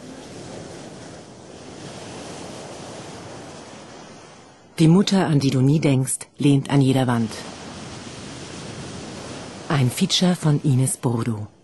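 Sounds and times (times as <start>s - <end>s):
wind on the microphone: 0.0s - 5.0s, 7.1s - 10.0s
ocean surf roaring with waves washing in: 0.0s - 5.5s, 6.7s - 11.2s
speech: 4.8s - 7.5s, 9.7s - 11.6s.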